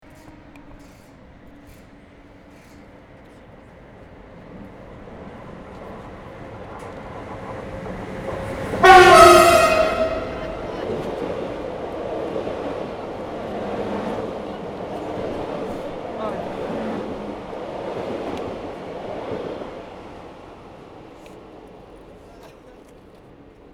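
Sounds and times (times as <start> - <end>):
train passing: 0.0 - 22.4
train horn: 8.7 - 11.1.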